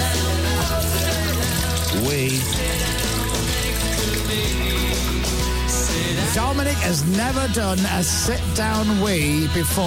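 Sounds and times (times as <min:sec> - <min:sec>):
toilet flushing: 0:00.2 - 0:05.6
speech: 0:06.4 - 0:09.8.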